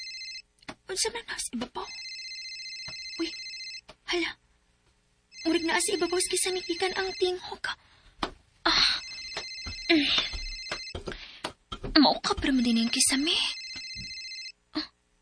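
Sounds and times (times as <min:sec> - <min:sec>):
bright electronic cellphone ringtone: 0:00.0 - 0:00.4, 0:01.9 - 0:03.8, 0:05.3 - 0:07.4, 0:08.9 - 0:11.0, 0:12.8 - 0:14.5
speech: 0:00.9 - 0:02.1, 0:03.2 - 0:03.5, 0:04.1 - 0:04.4, 0:05.4 - 0:07.9, 0:09.9 - 0:10.4, 0:12.0 - 0:13.6.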